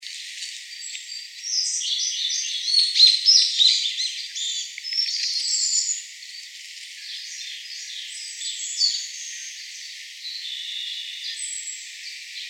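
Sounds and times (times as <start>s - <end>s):
Siberian blue robin song of high rapid chirps and trilled phrases: 0.2s - 12.4s.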